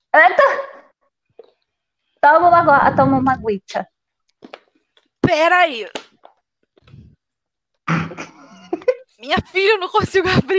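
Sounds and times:
speech: 0.2s - 0.6s, 2.2s - 4.6s, 5.3s - 6.0s, 9.2s - 10.5s
faint low rumble: 2.2s - 3.7s
person coughing hard after choking: 7.9s - 8.5s.

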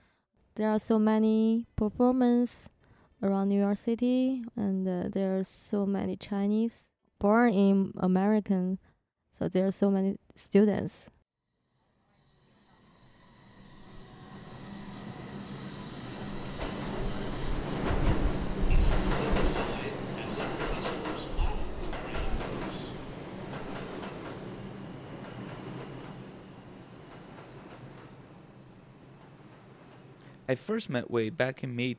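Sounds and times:
speech: 0.6s - 11.2s, 30.5s - 31.9s
New York City subway train rumbling along the tracks from Queens to Manhattan: 12.6s - 30.5s.

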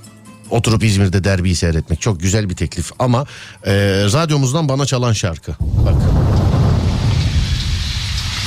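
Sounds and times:
speech: 0.5s - 6.2s
heavy low rumble: 5.6s - 8.4s
steady rain pouring: 5.6s - 8.4s.

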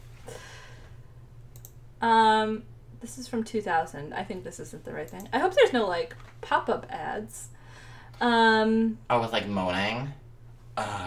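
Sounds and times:
steady low electrical hum: 0.0s - 11.0s
computer keyboard clacks: 1.5s - 1.8s
speech: 2.0s - 7.6s, 8.2s - 10.2s, 10.8s - 11.0s.

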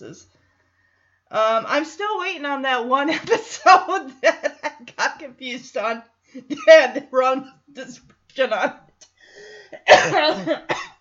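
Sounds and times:
speech: 0.0s - 0.4s, 1.3s - 8.8s, 9.7s - 10.9s
person coughing harshly: 9.8s - 10.9s.

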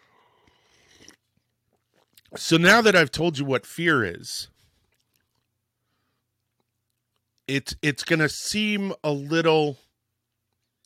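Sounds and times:
slurping sip of hot coffee: 0.4s - 2.3s
swallow: 0.4s - 2.4s
speech: 2.3s - 4.6s, 7.5s - 9.8s.

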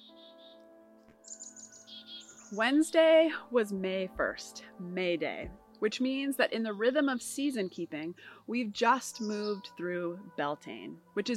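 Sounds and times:
birds chirping outdoors: 0.0s - 3.4s, 6.0s - 10.2s
speech: 2.5s - 11.3s.

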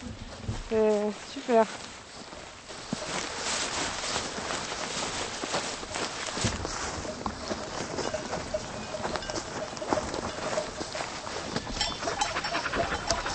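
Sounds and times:
footsteps: 0.0s - 13.3s
rustling movement: 0.0s - 13.3s
speech: 0.7s - 1.9s
border collie sheepdogs panting while herding ewes: 7.4s - 13.3s.

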